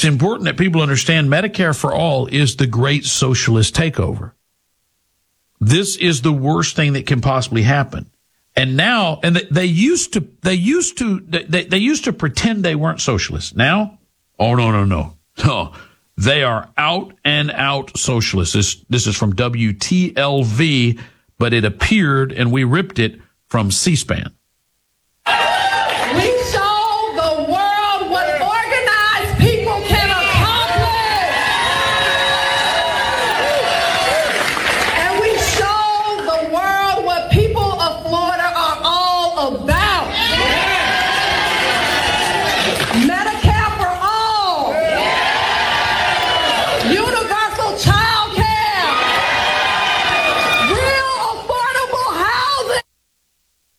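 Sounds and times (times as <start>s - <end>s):
speech: 0.0s - 4.4s, 5.6s - 24.4s
crowd of women screeching and yelling over one another: 25.3s - 52.9s.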